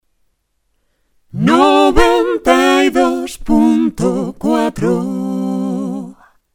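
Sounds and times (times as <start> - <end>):
radio jingle with two singers: 1.3 - 6.3.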